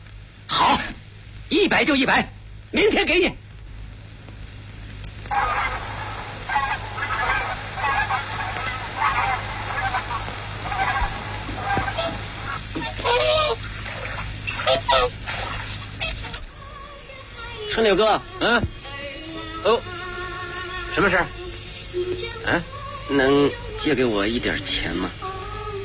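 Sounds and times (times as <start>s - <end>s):
low hum: 0.0s - 25.8s
speech: 1.5s - 3.4s, 17.8s - 18.7s, 19.6s - 19.9s, 21.0s - 21.4s, 22.0s - 25.2s
swan honking: 5.2s - 16.5s.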